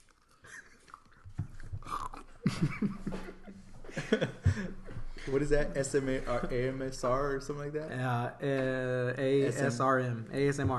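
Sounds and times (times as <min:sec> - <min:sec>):
crunchy chewing of food: 0:00.0 - 0:02.4
soft chuckle: 0:01.6 - 0:05.3
speech: 0:02.5 - 0:03.2, 0:05.3 - 0:10.7.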